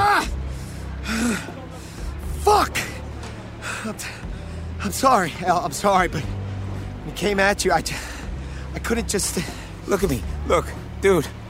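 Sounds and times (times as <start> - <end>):
ragged heavy breathing with a strained gasp: 0.4 - 2.2, 3.6 - 4.8, 7.9 - 8.8
speech: 3.8 - 6.4, 7.1 - 8.1, 8.8 - 11.4.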